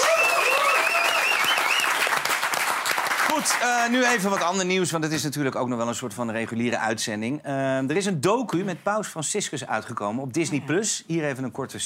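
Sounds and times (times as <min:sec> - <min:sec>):
cheering or whistle-like tones: 0:00.0 - 0:03.6
crowd applause: 0:00.0 - 0:04.6
speech: 0:03.4 - 0:11.8.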